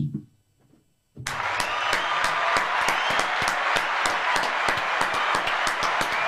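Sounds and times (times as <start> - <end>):
canned applause: 1.2 - 6.2
live studio audience clapping: 1.2 - 6.2.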